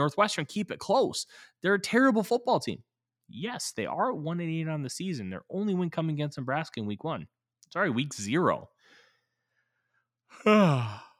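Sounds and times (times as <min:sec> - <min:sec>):
speech: 0:00.0 - 0:08.7, 0:10.3 - 0:11.0
person yawning: 0:10.3 - 0:11.1.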